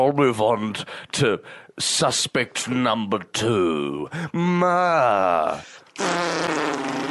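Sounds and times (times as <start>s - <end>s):
speech: 0.0s - 7.0s
fart: 6.0s - 7.0s.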